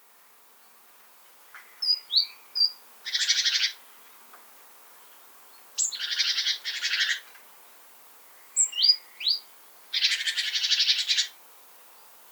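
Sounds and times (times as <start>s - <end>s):
great tit Parus major calls and scold bursts: 1.8s - 3.8s, 5.8s - 7.3s, 8.4s - 11.4s.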